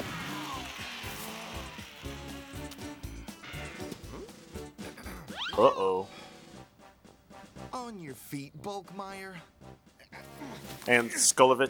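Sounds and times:
remote control toy car small motor whining and revving: 0:00.0 - 0:03.8
speech: 0:05.6 - 0:06.2, 0:07.9 - 0:09.6, 0:10.5 - 0:11.6.

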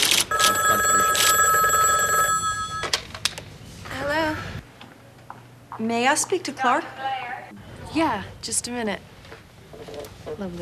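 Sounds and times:
telephone ringing in a college dorm: 0:00.0 - 0:03.1
speech: 0:05.8 - 0:07.1, 0:07.9 - 0:09.1, 0:10.3 - 0:10.6.

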